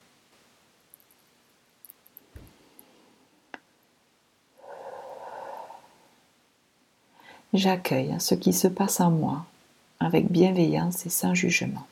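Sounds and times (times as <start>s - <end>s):
slow deep breath during meditation: 4.6s - 6.3s, 7.1s - 7.5s
speech: 7.5s - 9.5s, 10.1s - 11.8s.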